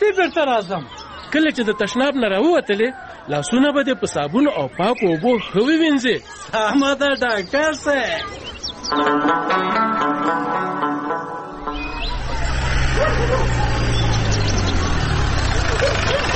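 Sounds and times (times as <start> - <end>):
speech: 0.2 - 10.5
high tonal sounds: 9.0 - 13.1
arriving car engine rumbling: 11.6 - 16.3.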